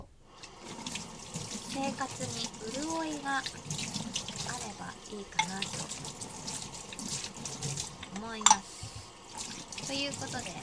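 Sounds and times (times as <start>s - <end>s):
tap water splashing into a sink: 0.4s - 10.6s
speech: 1.8s - 3.9s, 4.6s - 6.8s, 8.2s - 8.8s, 9.9s - 10.6s.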